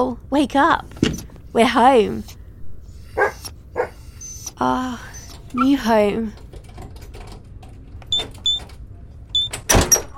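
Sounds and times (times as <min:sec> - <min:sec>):
speech: 0:00.0 - 0:02.4, 0:04.6 - 0:06.4
steady low rumble: 0:00.0 - 0:10.1
anxious dogs barking and yipping: 0:03.0 - 0:04.3.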